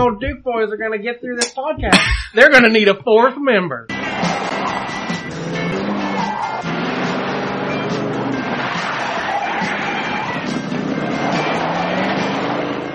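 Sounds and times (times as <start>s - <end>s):
dense wash of noise: 0.0s - 3.9s
speech: 0.0s - 3.9s
car engine roaring as the car speeds down the road: 3.9s - 12.9s.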